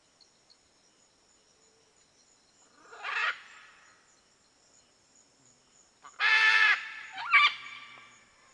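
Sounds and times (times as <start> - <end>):
red-and-green macaw squawking: 6.1 - 8.0.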